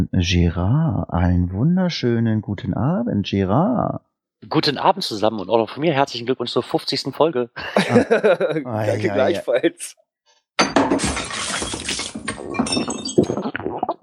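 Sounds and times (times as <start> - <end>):
speech: 0.0 - 10.0, 10.6 - 11.8, 12.5 - 13.9
laughter: 7.6 - 9.9
glasses clinking in a toast: 10.6 - 13.4.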